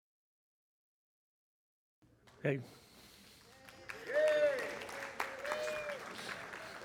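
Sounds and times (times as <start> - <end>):
crowd clapping: 2.2 - 6.8
speech: 2.4 - 2.9
whoops and cheers: 4.0 - 6.2.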